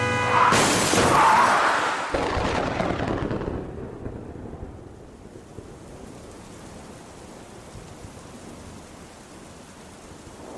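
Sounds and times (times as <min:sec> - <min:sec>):
truck crashing into vehicle from side: 0:00.3 - 0:03.0.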